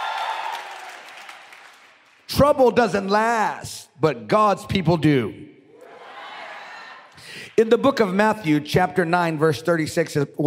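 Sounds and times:
crowd applause: 0.0 - 2.2
speech: 2.3 - 5.5, 7.6 - 10.4.

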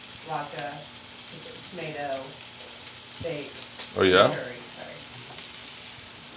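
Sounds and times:
steak sizzling in a pan: 0.0 - 6.3
speech: 0.3 - 2.5, 3.2 - 4.6.

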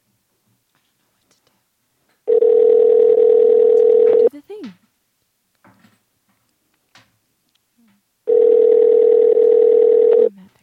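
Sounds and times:
steady mid-pitched telephone ringing tone during a call: 2.3 - 4.3, 8.3 - 10.3.

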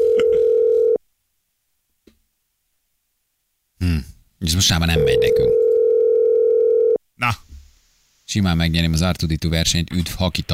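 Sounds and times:
telephone dial tone while calling a listener: 0.0 - 1.0, 5.0 - 7.0
speech: 4.4 - 5.7, 7.2 - 7.4, 8.3 - 10.5.

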